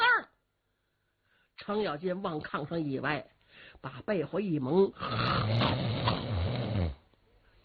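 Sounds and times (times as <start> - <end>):
speech: 1.6 - 6.3
man's voice imitating snoring of a man lying on a kang bed: 5.0 - 7.1.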